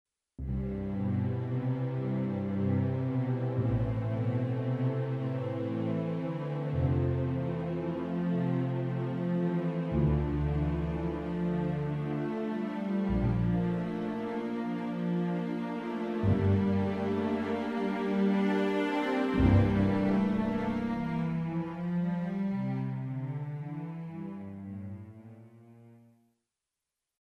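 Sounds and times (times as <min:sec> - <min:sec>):
dry woodwind melody: 0:00.7 - 0:23.2.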